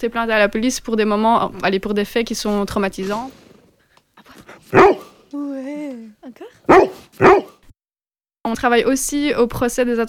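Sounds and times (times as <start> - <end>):
speech: 0.0 - 3.4, 4.5 - 7.6, 8.4 - 10.0
police assistance dog barking: 4.7 - 5.2, 6.6 - 7.6.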